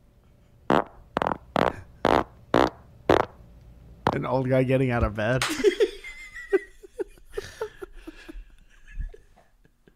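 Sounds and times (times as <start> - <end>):
fart: 0.7 - 3.4
speech: 4.2 - 5.9
laughter: 5.5 - 9.9.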